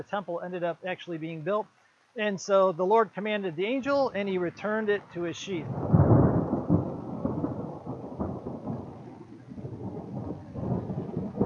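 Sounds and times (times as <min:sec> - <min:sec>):
speech: 0:00.0 - 0:06.0
steady rainfall outside: 0:00.0 - 0:11.4
deep rolling thunder outside: 0:05.6 - 0:11.4.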